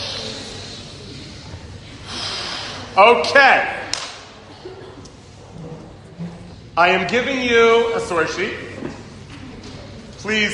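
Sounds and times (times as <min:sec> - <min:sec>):
deep cleansing breath in through the nose during a group breathing exercise: 0:02.0 - 0:02.9
speech: 0:03.0 - 0:03.8, 0:06.8 - 0:08.6, 0:10.2 - 0:10.5.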